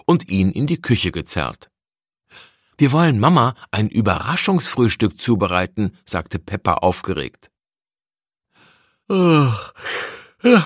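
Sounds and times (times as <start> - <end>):
speech: 0.1 - 1.7, 2.3 - 7.5, 9.1 - 10.6
voice performing a drawn-out yawn: 9.1 - 10.6.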